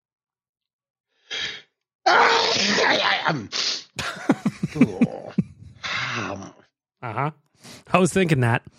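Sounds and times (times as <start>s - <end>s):
person sneezing: 1.3s - 4.0s
speech: 3.3s - 5.2s, 6.2s - 8.7s
laughter: 4.0s - 5.8s.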